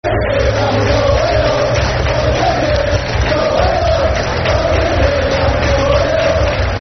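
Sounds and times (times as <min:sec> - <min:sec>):
football crowd chanting: 0:00.0 - 0:06.7.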